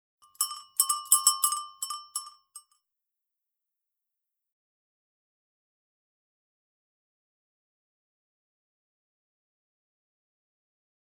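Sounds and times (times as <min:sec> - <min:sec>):
bell ringing: 0:00.3 - 0:02.3.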